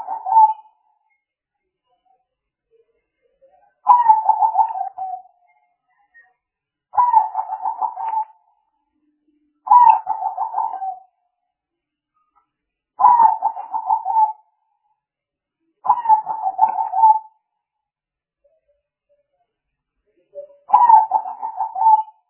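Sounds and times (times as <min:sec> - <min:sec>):
Spotted dove cooing: 0:00.0 - 0:00.7, 0:03.9 - 0:05.3, 0:07.0 - 0:08.4, 0:09.7 - 0:11.0, 0:13.0 - 0:14.4, 0:15.9 - 0:17.3, 0:20.7 - 0:22.2.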